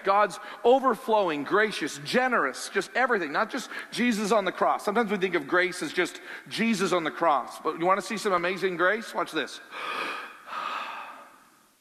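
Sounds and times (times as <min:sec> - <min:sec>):
speech: 0:00.0 - 0:10.2
deep breath: 0:06.2 - 0:06.5, 0:09.7 - 0:11.5.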